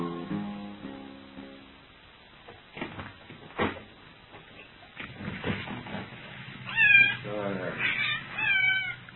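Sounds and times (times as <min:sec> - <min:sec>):
quiet shuffling: 0:02.4 - 0:09.1
cat meowing as it wanders about someone's feet: 0:06.6 - 0:09.1.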